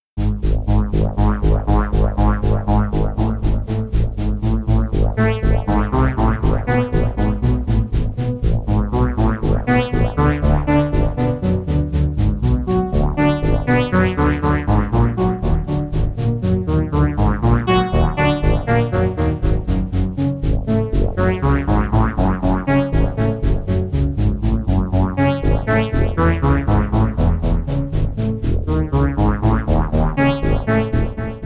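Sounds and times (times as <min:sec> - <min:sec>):
fresh voice bass arpeggio: 0:00.2 - 0:31.4.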